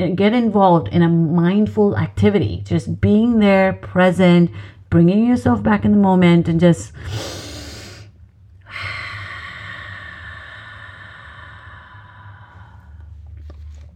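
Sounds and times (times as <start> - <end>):
speech: 0.0 - 7.4
slow deep breath taken for relaxation during a calming exercise: 7.0 - 13.9.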